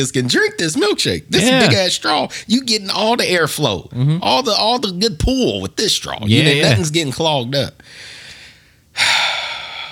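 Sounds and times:
speech: 0:00.0 - 0:08.1, 0:09.0 - 0:09.2
faint airy inhale: 0:07.8 - 0:09.9.

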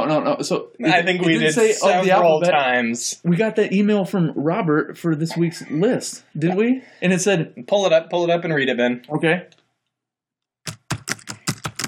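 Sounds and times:
speech: 0:00.1 - 0:09.6
computer keyboard typing: 0:10.7 - 0:11.8.

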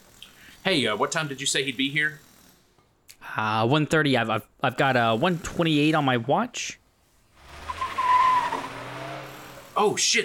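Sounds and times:
speech: 0:00.6 - 0:02.3, 0:03.4 - 0:06.8, 0:09.8 - 0:10.2
road noise: 0:04.8 - 0:10.2
Porsche 911 sports car tires squealing while skidding to a stop: 0:07.3 - 0:10.0.

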